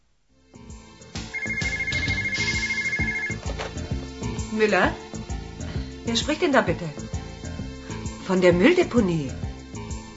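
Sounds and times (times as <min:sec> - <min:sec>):
telephone ringing with a melodic electronic ringtone: 0:01.4 - 0:03.5
speech: 0:04.6 - 0:05.0, 0:06.1 - 0:07.0, 0:08.3 - 0:09.4.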